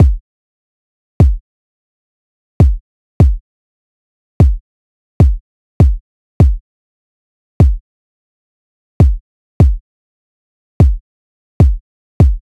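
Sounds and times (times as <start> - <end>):
150 BPM kick drum loop: 0.0 - 0.2, 1.2 - 1.4, 2.6 - 3.4, 4.4 - 4.6, 5.2 - 6.6, 7.6 - 7.8, 9.0 - 9.8, 10.8 - 11.0, 11.6 - 12.4.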